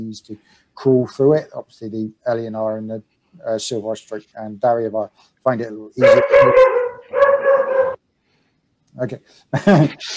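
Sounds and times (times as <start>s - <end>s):
speech: 0.0s - 6.8s, 9.0s - 10.1s
voice imitating a wild dog barking inside a cave: 6.0s - 8.0s.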